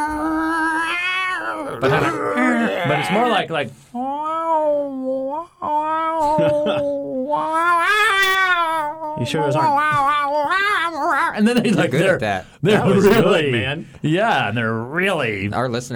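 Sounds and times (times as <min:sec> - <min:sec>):
man's voice mimicking cats yowling: 0:00.0 - 0:03.4, 0:04.1 - 0:11.6
laughter: 0:01.8 - 0:03.5, 0:06.2 - 0:07.2, 0:11.2 - 0:13.5
speech: 0:01.8 - 0:04.0, 0:06.3 - 0:08.2, 0:09.2 - 0:15.9.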